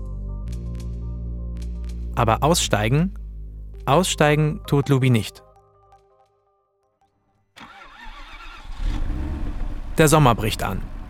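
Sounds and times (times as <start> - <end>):
speech: 2.2 - 3.2, 3.9 - 5.4, 10.0 - 10.9
Range Rover Vogue engine starting and idling: 7.6 - 11.0.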